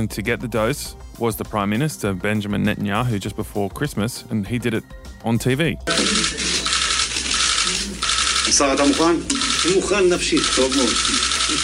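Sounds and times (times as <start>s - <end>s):
speech: 0.0s - 6.5s, 8.5s - 11.6s
camera shutters clicking: 5.9s - 11.6s.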